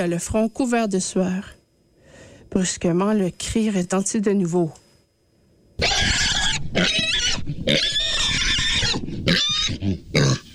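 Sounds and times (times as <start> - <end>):
speech: 0.0 - 1.6, 2.5 - 4.8
pig squealing: 5.8 - 10.5.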